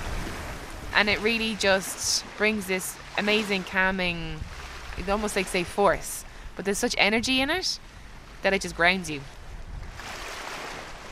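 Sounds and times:
sea waves at the shore: 0:00.0 - 0:11.1
speech: 0:01.0 - 0:09.4.

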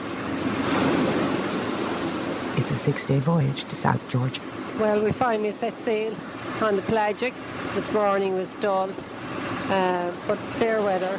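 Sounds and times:
faint windy hiss: 0:00.0 - 0:11.1
ocean waves around a 55-foot sailing boat between the Falklands and South Georgia: 0:00.0 - 0:11.1
speech: 0:02.6 - 0:09.1, 0:09.7 - 0:11.1.

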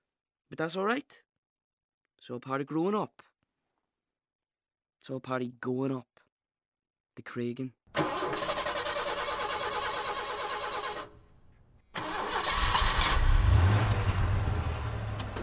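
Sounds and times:
speech: 0:00.5 - 0:01.2, 0:02.2 - 0:03.3, 0:05.0 - 0:06.1, 0:07.2 - 0:07.8
old car engine cranking and starting into a rough idle: 0:08.0 - 0:11.3, 0:11.9 - 0:15.4.

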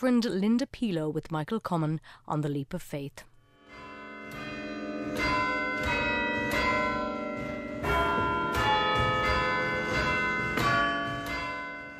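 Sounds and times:
speech: 0:00.0 - 0:03.8
peal of church bells ringing: 0:03.5 - 0:11.9.

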